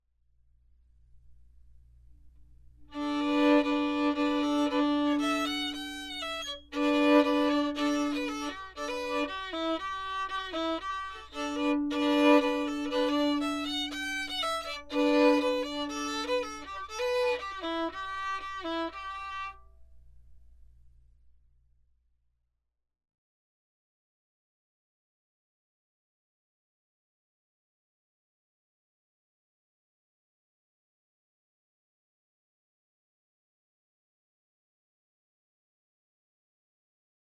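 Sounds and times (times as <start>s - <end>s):
violin playing in a vocal booth: 2.9s - 19.7s.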